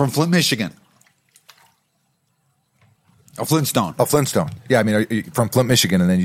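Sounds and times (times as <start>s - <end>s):
speech: 0.0s - 0.8s, 3.4s - 6.2s
soft slurp of a sip of water: 0.6s - 5.6s.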